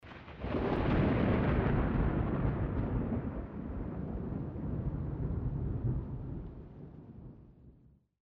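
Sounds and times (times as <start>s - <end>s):
medium thunder: 0.0s - 8.0s.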